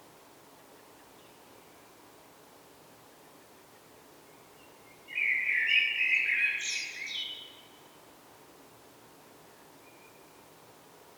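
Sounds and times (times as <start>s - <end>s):
common blackbird Turdus merula singing: 5.1s - 7.6s.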